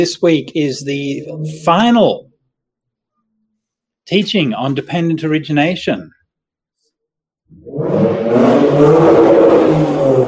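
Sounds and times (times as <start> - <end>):
speech: 0.0 - 2.3, 4.1 - 6.2, 7.5 - 10.2
car engine starting and revving: 7.6 - 10.2.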